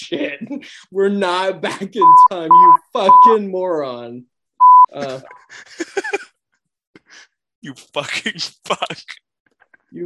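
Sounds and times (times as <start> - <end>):
speech: 0.0 - 4.3, 4.9 - 6.2, 7.6 - 9.2
censor bleep: 2.0 - 3.3, 4.6 - 4.9.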